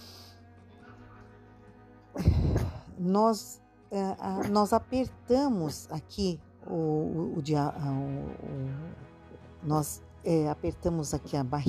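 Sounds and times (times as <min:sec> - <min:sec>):
deep breath: 0:02.2 - 0:02.9
speech: 0:03.0 - 0:11.6.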